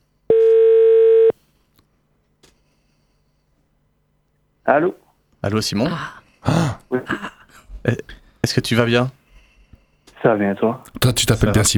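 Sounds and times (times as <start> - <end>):
telephone ringback tone while calling someone: 0.3 - 1.4
speech: 4.7 - 9.2, 10.2 - 11.7.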